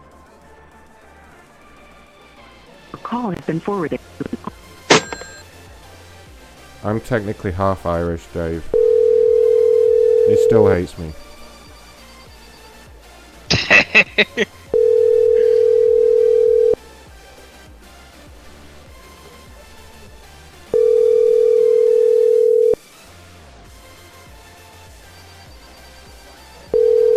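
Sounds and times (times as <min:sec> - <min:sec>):
speech: 0:03.1 - 0:04.4, 0:06.8 - 0:08.8, 0:10.3 - 0:11.2, 0:14.1 - 0:14.6
laughter: 0:03.7 - 0:04.6, 0:13.5 - 0:14.6
telephone ringing in the background: 0:04.9 - 0:05.5, 0:08.7 - 0:12.7, 0:14.7 - 0:16.8, 0:20.7 - 0:22.8, 0:26.6 - 0:27.1.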